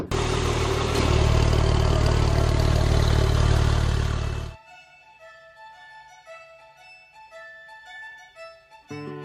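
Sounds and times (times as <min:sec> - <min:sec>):
car engine starting and roaring: 0:00.1 - 0:04.6.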